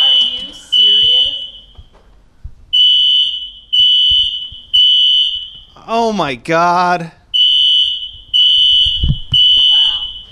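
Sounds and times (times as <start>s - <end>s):
fire alarm blaring in long repeating tones: 0.0s - 2.0s, 2.7s - 6.0s, 7.3s - 10.3s
speech: 5.9s - 7.2s.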